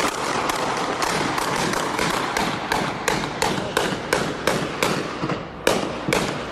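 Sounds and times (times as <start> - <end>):
gunfire during a shooting recorded from inside an apartment: 0.0 - 6.5.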